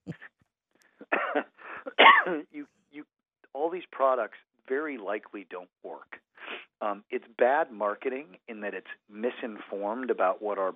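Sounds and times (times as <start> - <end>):
person coughing raspy and phlegmy: 1.0 - 2.6
person laughing: 1.0 - 2.6
speech: 2.3 - 3.1, 3.7 - 6.1, 6.8 - 10.7.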